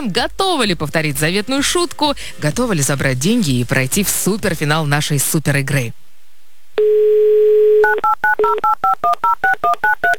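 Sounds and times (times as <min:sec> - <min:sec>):
speech: 0:00.0 - 0:06.0, 0:08.0 - 0:10.1
telephone dial tone: 0:06.8 - 0:10.0.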